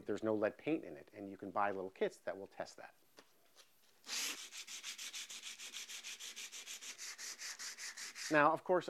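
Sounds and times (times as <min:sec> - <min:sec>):
speech: 0:00.1 - 0:03.0, 0:08.3 - 0:08.8
coarse 60-grit sandpaper rasping by hand across wood: 0:04.0 - 0:08.6.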